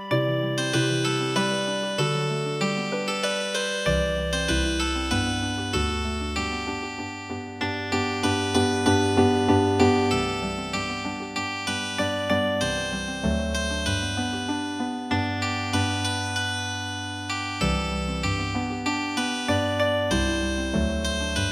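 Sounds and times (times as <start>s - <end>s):
healing harp music: 0.1s - 21.4s.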